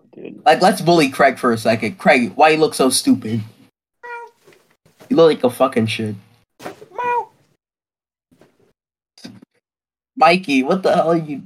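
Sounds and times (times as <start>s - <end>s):
speech: 0.3s - 3.5s, 5.2s - 6.3s, 10.2s - 11.4s
pet cat meowing: 4.0s - 4.4s, 6.9s - 7.4s.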